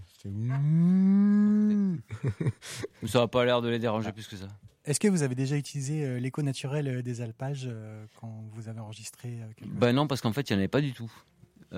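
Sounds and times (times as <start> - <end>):
speech: 0.2 - 0.8, 2.2 - 11.7
cow mooing in a mountain pasture: 0.4 - 1.8.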